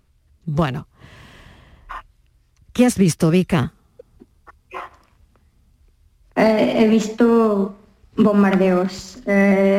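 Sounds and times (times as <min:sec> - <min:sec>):
speech: 0:00.5 - 0:01.2, 0:02.8 - 0:03.8, 0:06.4 - 0:09.7
dog yipping and whimpering: 0:04.7 - 0:05.0
dog barking: 0:04.7 - 0:05.1.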